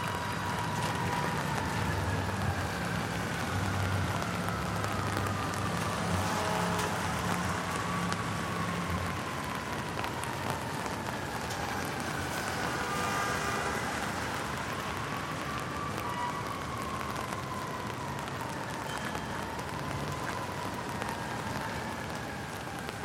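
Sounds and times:
rain falling on an umbrella: 0.0s - 23.0s.

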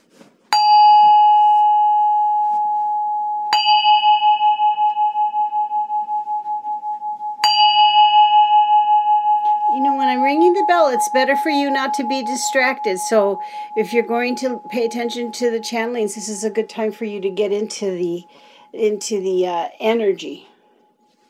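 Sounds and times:
singing bell being struck and ringing: 0.5s - 19.3s
speech: 11.0s - 20.5s.

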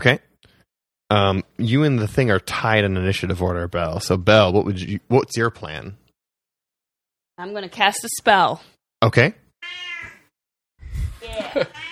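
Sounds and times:
speech: 0.0s - 0.3s, 1.1s - 6.0s, 7.4s - 9.4s, 11.3s - 11.9s
cat meowing: 9.6s - 10.3s, 11.6s - 11.9s
laughter: 11.1s - 11.9s.

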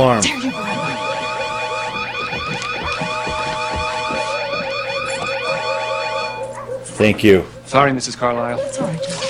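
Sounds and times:
speech: 0.0s - 0.9s, 7.0s - 9.2s
emergency alarm ringing in a room with rapid falling electronic sweeps: 0.0s - 6.8s.

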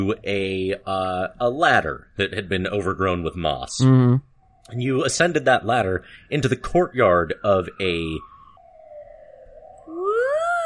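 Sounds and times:
speech: 0.0s - 8.3s
police siren wailing outside: 3.7s - 10.6s.

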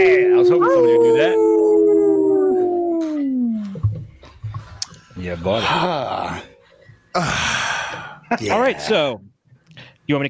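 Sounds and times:
speech: 0.0s - 1.6s, 5.2s - 6.5s, 7.2s - 7.7s, 8.3s - 9.3s, 10.1s - 10.2s
person imitating a werewolf howl: 0.0s - 3.7s.

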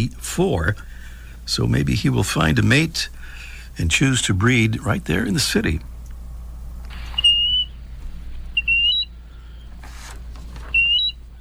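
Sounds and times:
speech: 0.0s - 0.9s, 1.5s - 3.2s, 3.8s - 5.9s
medium-sized sandpiper whistled calls: 7.0s - 7.8s, 8.5s - 9.7s, 10.7s - 11.2s.

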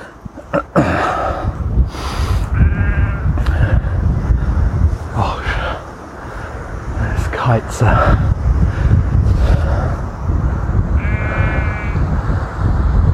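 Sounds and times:
low rumble of wind buffeting the microphone: 0.0s - 13.1s
sheep bleating outdoors: 2.5s - 3.3s, 11.0s - 12.0s
speech: 7.6s - 8.3s.

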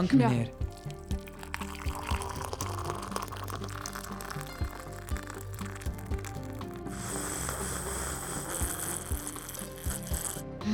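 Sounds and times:
speech: 0.0s - 0.7s
black coffee being poured into a cup: 0.4s - 10.6s.

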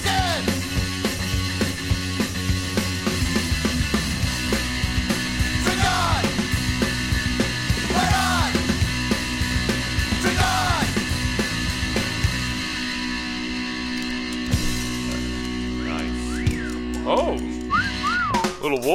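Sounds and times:
dense steady musical backdrop of a band's song: 0.0s - 18.9s
sliding tuneful whistling in a band's song: 16.2s - 17.0s, 17.6s - 18.7s.

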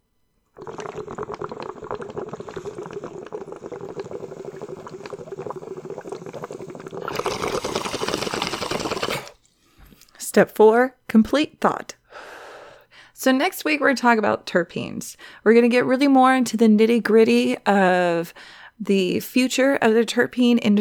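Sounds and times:
bowl of Kush cannabis being smoked with bubbling gurgle: 0.6s - 9.5s
speech: 10.4s - 12.0s, 13.2s - 20.8s.

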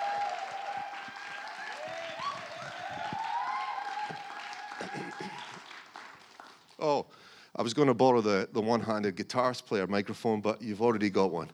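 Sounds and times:
audience applause for a guest coming up to be interviewed: 0.0s - 6.8s
speech: 6.8s - 11.5s.

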